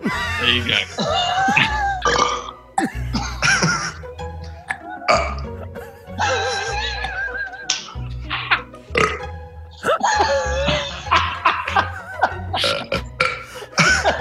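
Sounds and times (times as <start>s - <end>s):
laughter: 0.0s - 14.1s
speech: 0.1s - 1.2s
loud burps: 0.1s - 3.9s, 5.1s - 5.6s, 8.9s - 9.3s, 12.6s - 13.5s.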